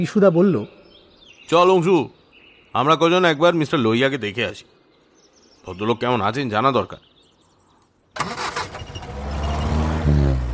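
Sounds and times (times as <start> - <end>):
speech: 0.0 - 0.8, 1.5 - 4.8, 5.6 - 7.1, 8.2 - 8.4
car engine starting with an abrupt cranking burst: 8.2 - 10.5.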